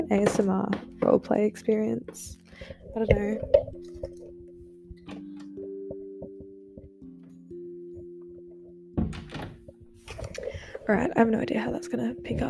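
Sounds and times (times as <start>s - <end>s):
speech: 0.0s - 4.2s, 10.9s - 12.4s
door opened to let a cat outside, thunk and rattle: 9.0s - 9.7s.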